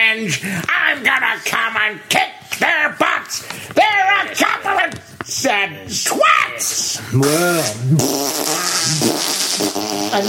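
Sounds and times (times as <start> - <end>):
speech: 0.2 - 9.3
mouth raspberry imitating a fart: 7.2 - 10.2.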